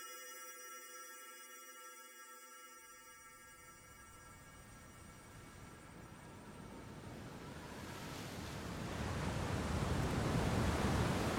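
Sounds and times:
rough ocean surf waves crashing: 7.7s - 11.3s.

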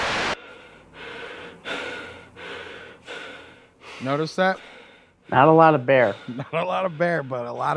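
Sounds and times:
heavy rhythmic breathing: 0.2s - 7.7s
speech: 4.0s - 4.7s, 5.3s - 7.7s.

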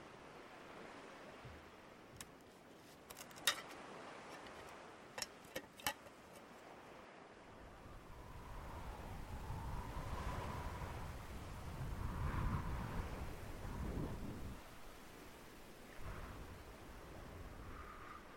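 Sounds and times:
wind blowing outdoors: 0.0s - 18.3s.

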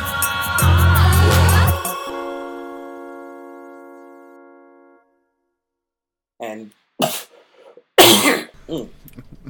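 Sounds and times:
faint throaty vocal sound: 0.1s - 2.7s
harsh breathy cough: 8.0s - 8.9s.

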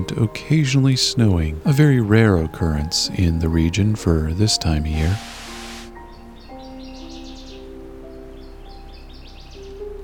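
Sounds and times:
speech: 0.1s - 5.4s
hiss: 4.5s - 10.0s
northern waterthrush singing: 4.8s - 6.0s.

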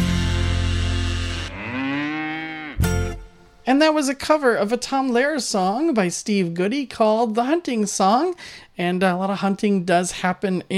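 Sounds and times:
purebred Guernsey cow mooing: 0.4s - 3.1s
speech: 3.7s - 10.7s.

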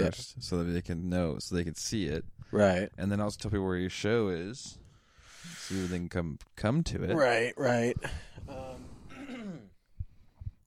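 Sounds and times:
speech: 0.0s - 4.8s, 5.4s - 8.9s
phlegmy cough and throat clearing: 9.1s - 9.8s.

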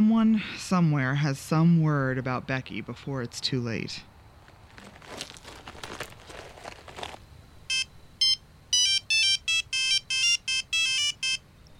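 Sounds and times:
speech: 0.2s - 4.1s
crinkly rustling: 4.4s - 7.3s
cell phone ringtone with quick electronic beeping melody: 7.7s - 11.4s.

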